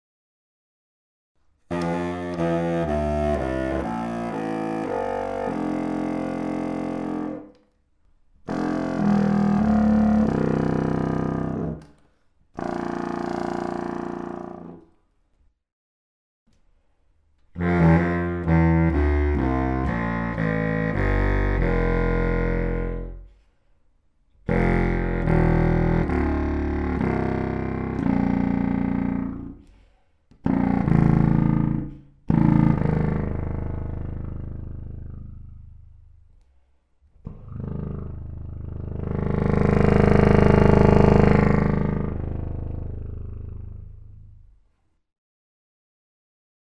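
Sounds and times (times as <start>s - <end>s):
contrabassoon: 1.7s - 7.6s, 8.4s - 11.9s, 12.6s - 14.8s, 17.5s - 23.3s, 24.4s - 29.7s, 30.4s - 35.5s, 37.3s - 44.2s.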